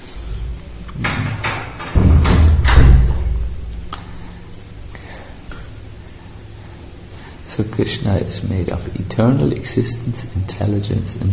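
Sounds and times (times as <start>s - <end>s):
door closing with heavy thuds and knocks: 1.0s - 3.6s
speech: 7.6s - 11.3s.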